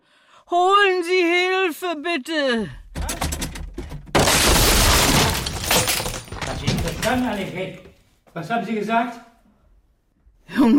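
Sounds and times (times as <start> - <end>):
speech: 0.5 - 2.8, 6.8 - 9.3, 10.6 - 10.7
door being kicked in: 2.9 - 7.3
loud crash splintering and clattering: 3.0 - 7.6.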